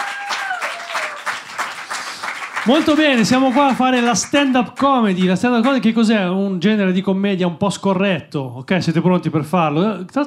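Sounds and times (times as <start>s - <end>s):
audience clapping at a stand-up comedy night in a pub: 0.0s - 5.9s
speech: 2.6s - 10.2s.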